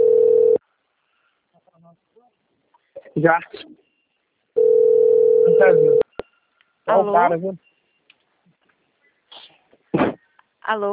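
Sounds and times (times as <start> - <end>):
telephone dial tone when placing a call: 0.0 - 0.6, 4.6 - 6.0
speech: 3.2 - 3.8, 5.5 - 6.0, 6.9 - 7.7, 10.7 - 10.9.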